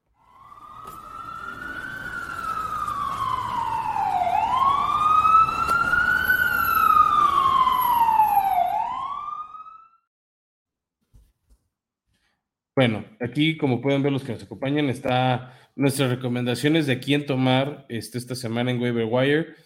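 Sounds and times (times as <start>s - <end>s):
emergency siren wailing: 0.0s - 10.1s
speech: 12.8s - 19.6s.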